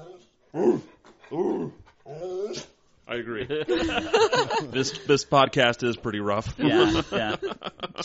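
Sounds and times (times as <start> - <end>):
dog whimpering and vocalizing: 0.0 - 2.7
speech: 0.5 - 1.8, 3.2 - 8.0
laughter: 3.3 - 5.4, 6.4 - 8.0.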